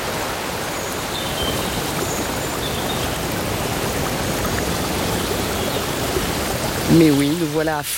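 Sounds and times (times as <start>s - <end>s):
flowing river water rushing in a forest: 0.0s - 7.9s
speech: 6.9s - 7.9s.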